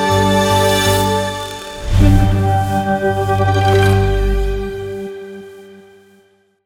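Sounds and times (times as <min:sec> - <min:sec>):
vibrating tech logo sound: 0:00.2 - 0:05.1.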